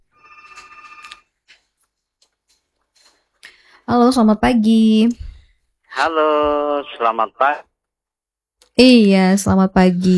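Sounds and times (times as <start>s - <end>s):
telephone ringing as a caller joins the line: 0.0s - 1.4s
speech: 3.9s - 5.2s, 6.0s - 7.7s, 8.8s - 10.1s.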